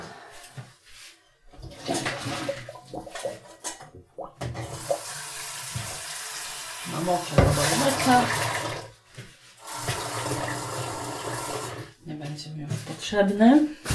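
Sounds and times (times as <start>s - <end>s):
water poured from a pot into a sink: 1.6s - 3.8s, 4.4s - 8.9s, 9.6s - 11.9s
speech: 7.0s - 8.5s, 12.4s - 13.8s.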